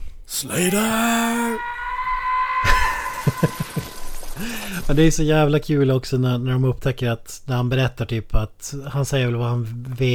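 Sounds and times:
police chief yelling: 0.3s - 1.9s
speech: 0.4s - 1.8s, 4.4s - 10.1s
laughter: 2.6s - 4.8s.

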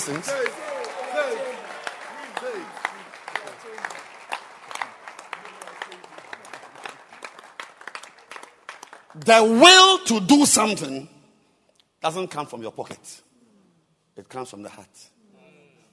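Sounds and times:
speech: 0.0s - 1.7s, 2.4s - 4.2s, 9.2s - 11.1s, 12.0s - 13.3s, 14.2s - 15.2s
audience clapping at a church service: 0.0s - 9.8s.

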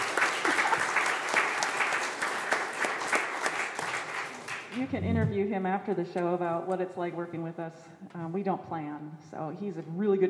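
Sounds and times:
crowd applauding: 0.0s - 5.0s
speech: 4.8s - 10.2s.

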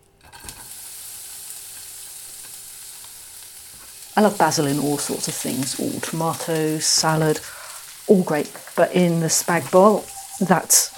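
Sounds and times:
chopped onion sizzling in a hot pan: 0.2s - 10.9s
speech: 4.2s - 10.9s.

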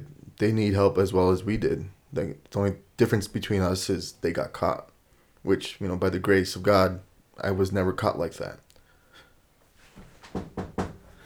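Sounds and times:
speech: 0.4s - 8.6s, 10.3s - 10.6s
knocks on a wooden surface: 10.0s - 11.1s.

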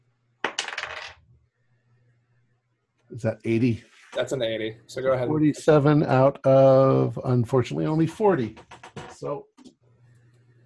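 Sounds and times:
bonus die rolled during a tabletop horror role-playing game: 0.4s - 1.2s
speech: 3.1s - 9.5s.

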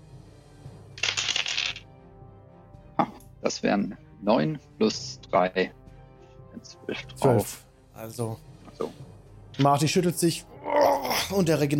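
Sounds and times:
ten-sided die rolling and clattering across a surface: 1.0s - 1.8s
speech: 3.5s - 5.8s, 6.6s - 11.7s.

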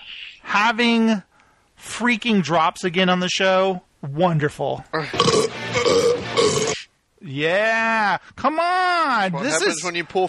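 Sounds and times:
speech: 0.5s - 1.3s, 1.9s - 6.6s, 7.2s - 10.2s
long loud croaking burp: 5.1s - 6.9s.

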